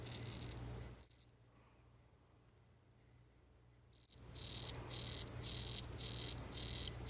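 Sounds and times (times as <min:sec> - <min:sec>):
Uakari poison frog Ranitomeya uakarii buzzy pulsed calls: 0:00.0 - 0:01.3, 0:04.0 - 0:07.0
steady low hum: 0:00.0 - 0:07.0.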